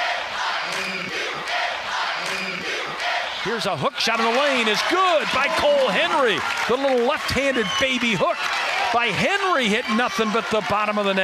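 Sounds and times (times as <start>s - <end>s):
large crowd chanting in a basketball arena: 0.0s - 11.2s
speech: 3.4s - 11.2s.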